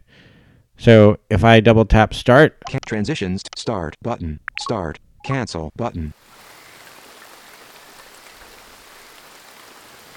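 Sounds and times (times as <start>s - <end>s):
speech: 0.8s - 6.5s
rain sound track playing from a sleep timer app: 6.1s - 10.1s.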